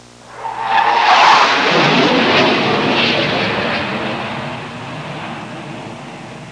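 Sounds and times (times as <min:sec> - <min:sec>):
jet flying: 0:00.0 - 0:06.5.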